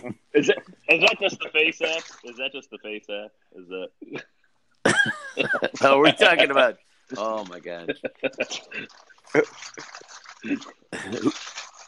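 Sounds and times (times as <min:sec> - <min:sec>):
speech: 0:00.0 - 0:11.7
water splashing as someone jumps in: 0:00.9 - 0:02.5, 0:08.5 - 0:11.8.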